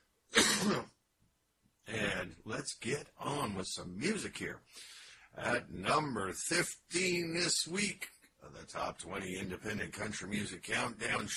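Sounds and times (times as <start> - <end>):
raspy throat clearing: 0.4 - 0.9
speech: 0.6 - 1.0, 1.8 - 11.3.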